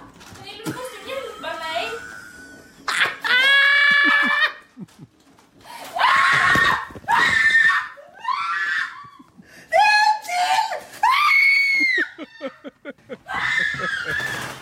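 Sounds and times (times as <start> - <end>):
laughter: 0.9 - 5.1, 11.7 - 14.5
people indoors screaming in panic at crows: 2.1 - 4.7, 5.9 - 9.3, 10.4 - 14.6.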